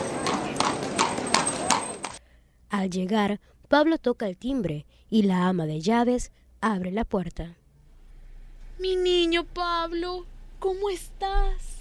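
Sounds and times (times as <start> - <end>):
horse pulling a carriage clip-clopping: 0.0 - 2.2
speech: 2.8 - 7.6, 8.8 - 11.7.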